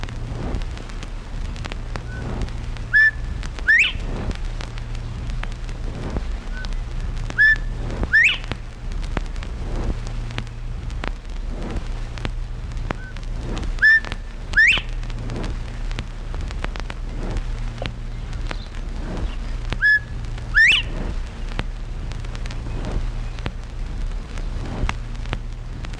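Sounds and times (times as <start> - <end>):
low outdoor rumble: 0.0 - 25.9
bobwhite quail whistling its two-part call: 2.9 - 4.0, 7.4 - 8.5, 13.8 - 14.9, 19.8 - 21.0.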